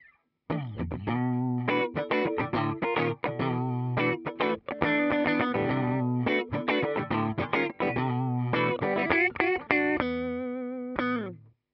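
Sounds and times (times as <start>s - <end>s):
clean electric guitar through a compressor: 0.5s - 11.5s.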